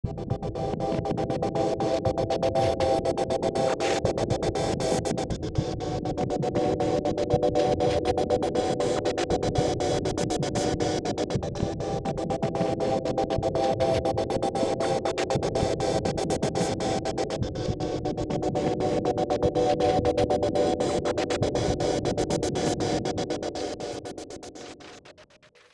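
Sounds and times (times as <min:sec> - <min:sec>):
ambient music sequence: 0:00.0 - 0:25.7.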